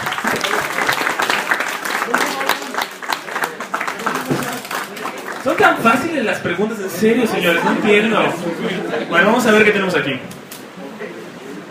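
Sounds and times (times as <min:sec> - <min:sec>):
audience applauding during a comic-book talk and quiz: 0:00.0 - 0:06.3
speech: 0:05.6 - 0:10.4.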